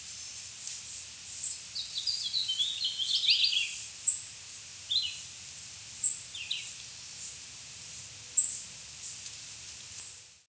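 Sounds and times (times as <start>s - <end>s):
Swainson's warbler singing: 1.4s - 4.3s, 4.9s - 5.2s, 6.0s - 6.7s, 8.4s - 8.7s.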